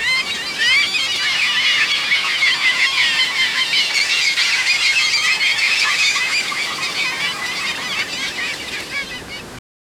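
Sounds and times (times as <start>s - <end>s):
birds chirping and twittering: 0.0s - 9.6s.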